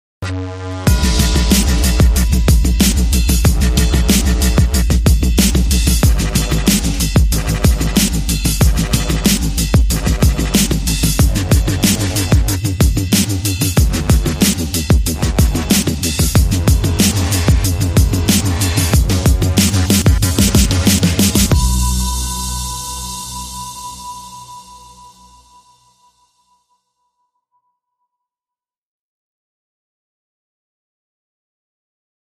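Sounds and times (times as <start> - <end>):
short dramatic strings: 0.8 - 25.5.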